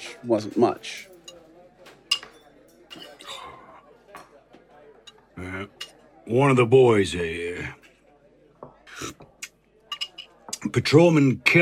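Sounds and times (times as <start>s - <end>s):
dishes and cutlery clinking in a lunchroom: 0.0s - 6.2s, 7.8s - 10.8s
murmur of indistinct voices in a lunchroom: 0.0s - 11.6s
speech: 0.1s - 1.1s, 5.4s - 7.8s, 10.6s - 11.6s.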